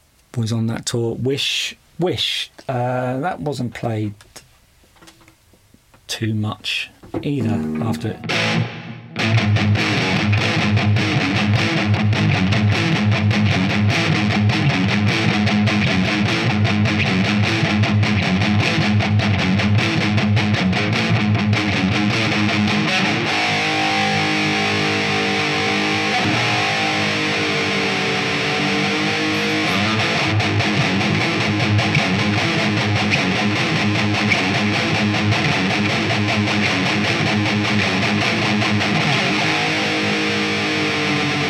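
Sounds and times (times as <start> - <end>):
speech: 0.4 - 4.4, 6.1 - 9.6
heavily distorted electric guitar riff: 7.0 - 41.4.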